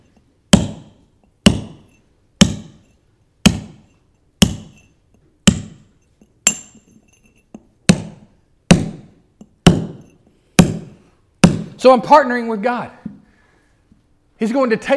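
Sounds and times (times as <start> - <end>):
hammer striking a chisel: 0.0 - 11.8
speech: 11.8 - 13.0, 14.4 - 14.9.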